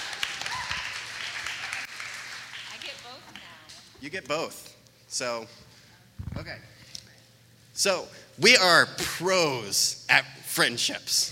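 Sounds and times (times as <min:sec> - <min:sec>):
audience applause: 0:00.0 - 0:03.9
speech: 0:04.0 - 0:05.7, 0:06.4 - 0:06.7, 0:07.8 - 0:11.2.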